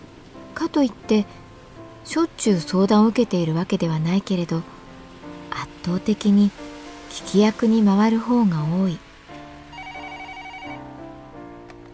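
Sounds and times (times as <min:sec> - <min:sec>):
speech: 0:00.6 - 0:01.4, 0:02.0 - 0:04.7, 0:05.5 - 0:09.0
telephone ringing with an electronic melodic tone: 0:09.7 - 0:11.0.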